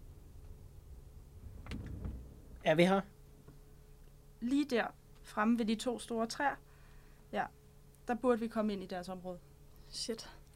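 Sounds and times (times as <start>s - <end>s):
car engine and road rumble rolling to a halt: 1.4s - 2.6s
speech: 2.6s - 3.1s, 4.4s - 6.7s, 7.3s - 10.4s.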